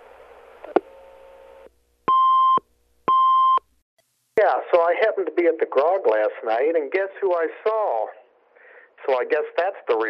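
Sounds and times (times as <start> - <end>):
line noise hiss: 0.0 - 1.8, 4.0 - 10.0
electronic answering machine beeps: 2.1 - 3.6
speech: 4.5 - 8.2, 9.1 - 10.0.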